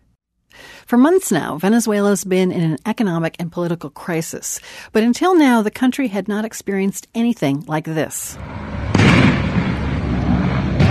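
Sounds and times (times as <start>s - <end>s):
speech: 0.9s - 9.4s
grenade blasts from a helicopter circling the Supreme Court in Caracas: 8.4s - 10.9s
gunfire from a helicopter firing at ground targets in Caracas: 8.6s - 10.9s.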